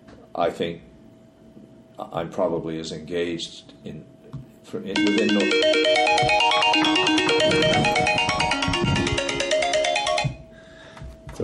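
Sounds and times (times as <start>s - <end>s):
speech: 0.4s - 0.9s, 2.0s - 8.2s
mobile phone ringtone: 5.0s - 10.5s.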